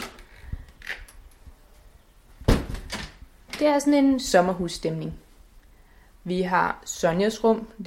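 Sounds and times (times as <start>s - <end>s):
front door swinging with a solid thud: 2.4s - 3.2s
speech: 3.6s - 5.2s, 6.2s - 7.8s.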